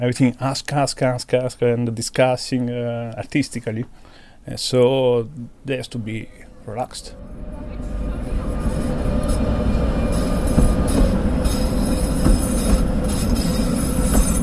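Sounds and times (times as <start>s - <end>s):
speech: 0.0s - 8.0s
Prague tram rolling along rails: 6.0s - 14.4s
tram wheel squeals: 7.8s - 14.4s.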